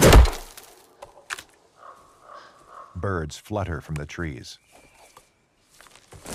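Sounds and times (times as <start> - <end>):
tomahawk thrown into tree bark: 0.0 - 0.7
speech: 3.0 - 4.8.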